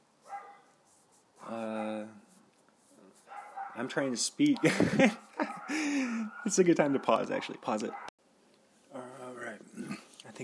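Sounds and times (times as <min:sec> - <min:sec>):
small dogs barking: 0:00.2 - 0:00.8, 0:03.2 - 0:03.9, 0:04.6 - 0:08.1
speech: 0:03.8 - 0:05.5, 0:06.4 - 0:08.1.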